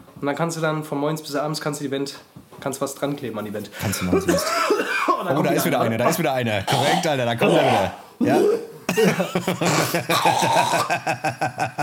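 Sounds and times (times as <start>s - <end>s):
speech: 0.2s - 11.8s
wet phlegmy cough and throat-hawking drawing up mucus: 3.8s - 11.2s
laughter: 8.9s - 11.8s.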